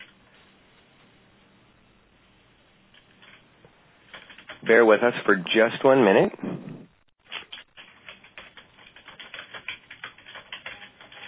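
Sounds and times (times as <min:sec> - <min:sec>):
keyboard typing: 0:04.0 - 0:04.7, 0:07.2 - 0:11.2
speech: 0:04.6 - 0:06.7.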